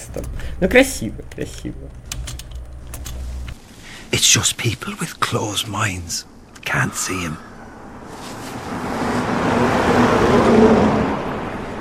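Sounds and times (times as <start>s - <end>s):
speech: 0.2s - 2.2s, 4.1s - 7.5s
single car driving past on the road: 8.0s - 11.7s.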